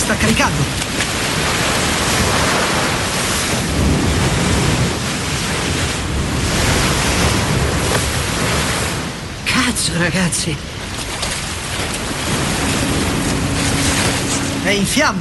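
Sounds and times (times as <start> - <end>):
ocean surf waves breaking on the shore: 0.0 - 15.1
speech: 0.1 - 1.0, 9.8 - 10.7, 14.7 - 15.1.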